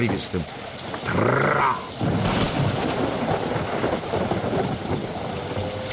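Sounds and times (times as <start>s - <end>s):
speech: 0.0s - 2.1s
heavy rain downpour: 0.0s - 5.9s
low rolling thunder: 1.9s - 5.9s.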